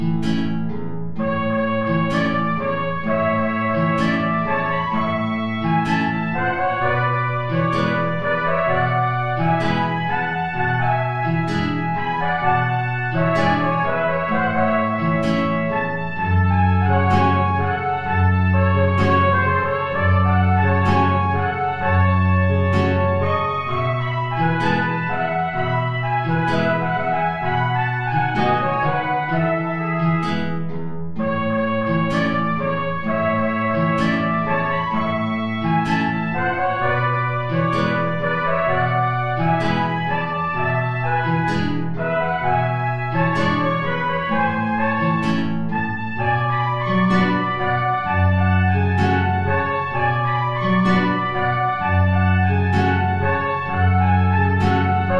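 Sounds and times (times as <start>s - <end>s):
high tango on two C trumpets and guitar: 0.2s - 55.1s.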